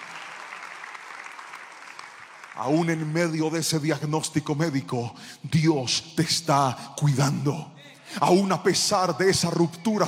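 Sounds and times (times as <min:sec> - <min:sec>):
crowd applauding: 0:00.0 - 0:03.4
speech: 0:02.6 - 0:10.0.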